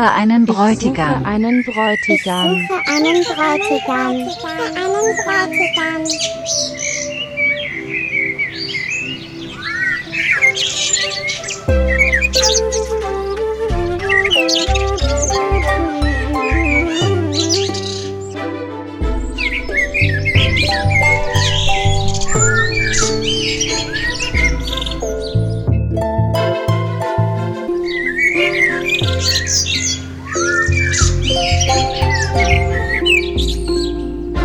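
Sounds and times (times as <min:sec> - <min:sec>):
speech: 0:00.0 - 0:06.9
blackbird singing: 0:00.0 - 0:18.5, 0:19.1 - 0:34.4
rhythmic musical accompaniment with a deep bass pulse: 0:11.7 - 0:34.4.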